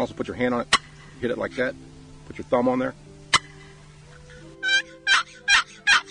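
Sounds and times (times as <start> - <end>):
speech: 0.0 - 3.0
gobbler yelp on a turkey call with lid drawn across: 3.3 - 6.1.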